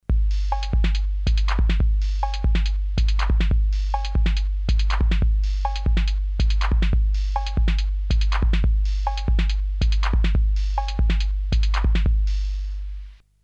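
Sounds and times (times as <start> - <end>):
filtered 808 drum machine on Commodore Amiga: 0.0 - 13.2.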